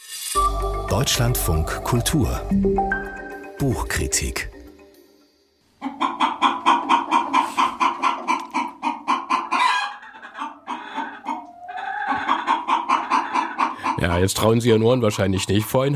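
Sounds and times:
speech: 0.9 - 4.6, 14.1 - 15.9
flock of chickens clucking and cackling: 5.7 - 15.4.

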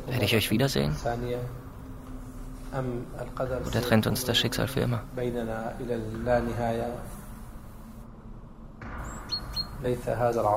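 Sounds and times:
low rumble: 0.0 - 10.5
speech: 0.1 - 1.6, 2.7 - 7.2, 9.8 - 10.5
small bird chirping: 9.0 - 9.8.

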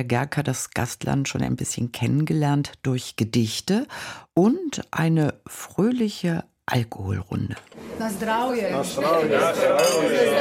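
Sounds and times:
speech: 0.0 - 10.3
many voices chatting and cheering: 7.8 - 10.3
glasses clinking in a toast: 9.4 - 10.3.

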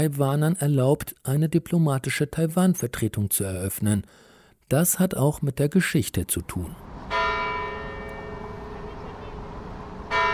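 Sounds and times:
speech: 0.0 - 6.9
large cathedral bell ringing: 7.0 - 10.3.

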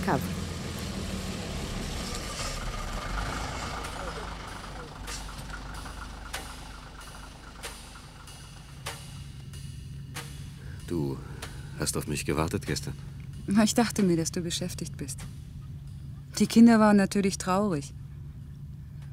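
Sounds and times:
bus engine idling at stop: 0.0 - 19.1
speech: 0.1 - 0.4, 11.8 - 15.4, 16.4 - 18.0.

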